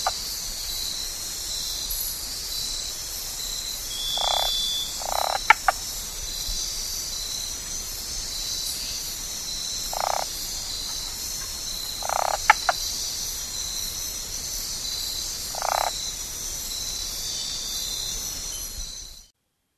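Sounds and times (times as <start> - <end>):
Cabrera's slender-legged treefrog clucking calls in the Ecuadorian Amazon: 0.0 - 0.2, 4.0 - 5.9, 9.8 - 13.7, 15.2 - 16.1
high-pitched insect drone in the Ecuadorian Amazon: 0.0 - 19.3.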